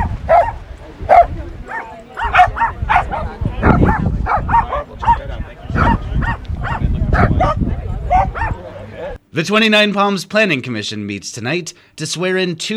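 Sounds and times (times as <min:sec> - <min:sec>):
several dogs barking and yipping at a dog park: 0:00.0 - 0:08.7
steady wind rumble: 0:00.0 - 0:09.2
faint murmur of people: 0:00.0 - 0:09.3
speech: 0:09.4 - 0:12.7.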